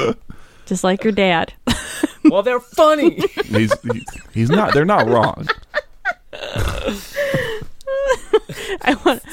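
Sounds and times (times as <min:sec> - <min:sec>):
speech: 0:00.0 - 0:05.6, 0:06.8 - 0:07.1, 0:08.5 - 0:09.3
laughter: 0:01.7 - 0:09.3
person imitating fart noises with their mouth: 0:06.4 - 0:07.0.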